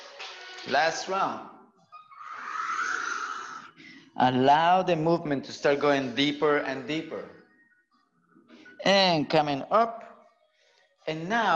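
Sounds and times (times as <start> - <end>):
speech: 0.6 - 1.6, 4.2 - 7.4, 8.8 - 10.0, 11.1 - 11.5
person breathing during a guided movement and breathing exercise: 2.8 - 4.2.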